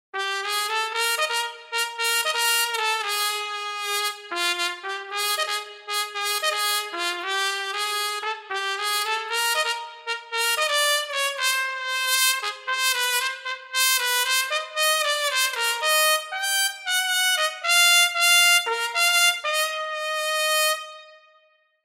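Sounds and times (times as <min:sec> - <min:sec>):
trumpet: 0:00.1 - 0:21.6.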